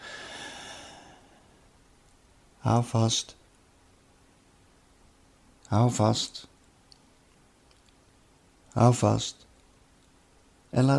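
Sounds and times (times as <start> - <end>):
deep breath drawn in during a guided breathing exercise: 0.0 - 1.5
speech: 2.6 - 3.4, 5.7 - 6.5, 8.8 - 9.5, 10.7 - 10.9.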